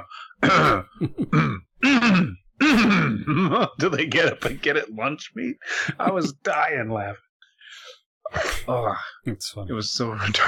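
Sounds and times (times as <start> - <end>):
speech: 0.0 - 2.3, 3.6 - 7.2, 8.3 - 10.4
voice from a smart speaker clearing its throat: 0.4 - 3.8
laughter: 3.3 - 4.7, 5.7 - 6.6.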